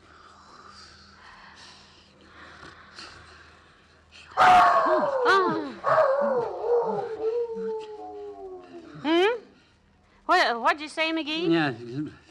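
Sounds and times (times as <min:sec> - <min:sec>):
speech: 0:04.4 - 0:06.3, 0:10.8 - 0:12.2
dog howling: 0:04.4 - 0:08.9.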